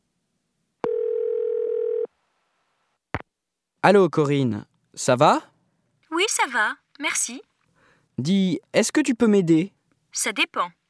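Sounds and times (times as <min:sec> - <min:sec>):
steady electronic telephone tone: 0:00.8 - 0:02.1
speech: 0:03.8 - 0:05.5, 0:06.2 - 0:07.5, 0:08.2 - 0:10.8.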